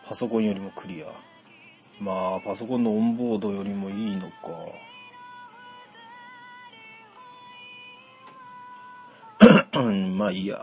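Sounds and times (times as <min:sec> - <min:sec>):
speech: 0:00.1 - 0:01.3, 0:01.9 - 0:04.9, 0:09.7 - 0:10.6
loud sharp cough: 0:09.4 - 0:09.8.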